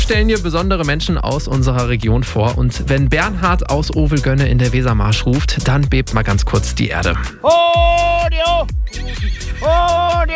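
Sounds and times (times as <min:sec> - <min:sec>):
speech: 0:00.1 - 0:10.3
horse whinnies with high quavering neighs: 0:08.9 - 0:10.1.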